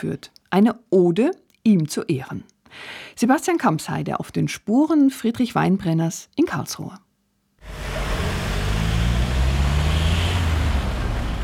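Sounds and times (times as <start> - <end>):
speech: 0.0 - 7.0
city traffic at a busy intersection at Weinbrennerplatz in Karlsruhe: 7.6 - 11.4.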